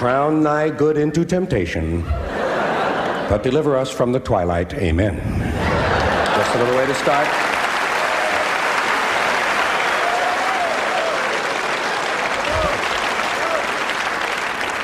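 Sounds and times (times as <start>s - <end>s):
speech: 0.0s - 2.2s, 3.3s - 5.4s, 6.5s - 7.5s
laughter: 2.0s - 4.0s, 5.2s - 8.4s
large crowd clapping: 5.6s - 14.8s
cheers and whoops: 7.8s - 14.3s.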